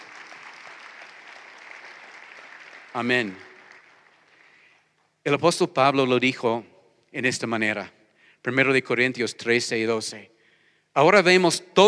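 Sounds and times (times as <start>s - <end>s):
church congregation applauding: 0.0s - 5.0s
speech: 3.0s - 3.5s, 5.2s - 11.8s.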